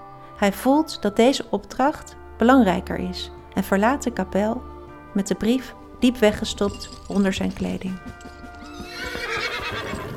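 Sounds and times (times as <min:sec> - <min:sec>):
speech: 0:00.4 - 0:08.4
horse hooves clopping: 0:06.1 - 0:10.1
horse whinnying with a high wavering neigh: 0:08.1 - 0:10.1.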